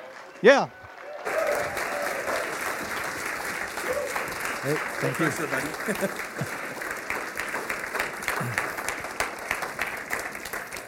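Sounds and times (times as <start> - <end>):
cheers and whistles: 0.0 - 2.8
crowd clapping: 0.0 - 10.8
speech: 0.4 - 0.8, 4.6 - 6.6
laughter: 3.8 - 7.1, 8.4 - 8.7.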